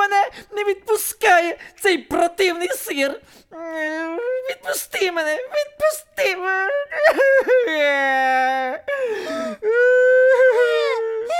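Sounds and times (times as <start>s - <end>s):
speech: 0.6s - 10.8s
person wailing and sobbing: 2.5s - 11.3s.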